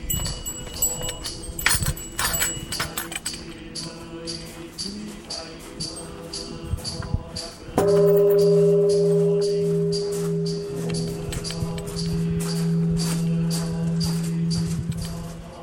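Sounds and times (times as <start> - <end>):
large temple bell struck: 0.0 - 3.4, 7.8 - 15.6.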